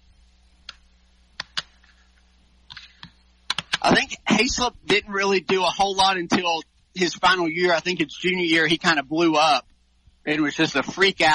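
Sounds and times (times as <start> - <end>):
low steady hum: 0.0 - 11.3
computer keyboard typing: 1.4 - 1.7, 3.5 - 3.9
speech: 3.8 - 9.7, 10.3 - 11.3.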